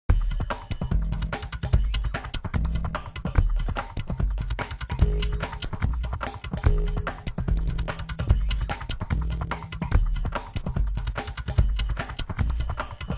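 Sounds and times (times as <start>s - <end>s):
groove loop: 0.1s - 13.1s.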